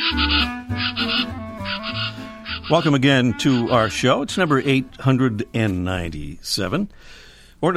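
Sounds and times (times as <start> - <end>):
plain chachalaca Ortalis vetula calling: 0.0 - 7.0
speech: 2.7 - 7.7.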